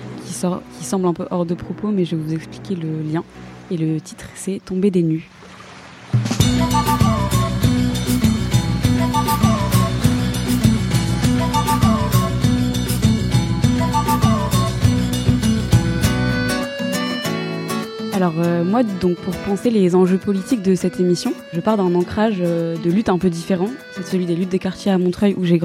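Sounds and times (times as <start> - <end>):
speech: 0.4 - 5.4, 18.2 - 25.6
song with steady driving beat and layered instruments: 6.2 - 17.8.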